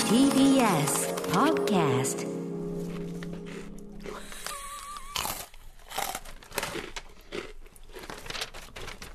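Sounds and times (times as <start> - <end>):
speech: 0.1 - 2.3
crunchy chewing of food: 2.8 - 9.1.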